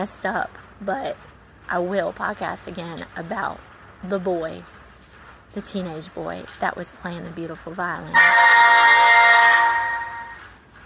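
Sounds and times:
speech: 0:00.0 - 0:04.7, 0:05.5 - 0:08.9
phone message notification chime: 0:08.2 - 0:10.4.

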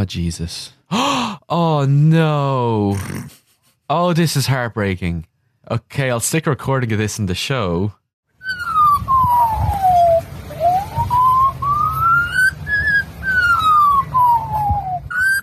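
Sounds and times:
speech: 0:00.0 - 0:08.0
Australian magpie mimicking an emergency siren during a bushfire: 0:08.4 - 0:15.4
low rough rumble: 0:08.5 - 0:15.4.

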